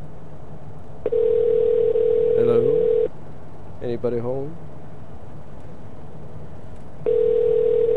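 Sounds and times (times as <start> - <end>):
telephone ringing tone on an outgoing call: 1.1 - 3.1, 7.0 - 7.9
speech: 3.9 - 4.6.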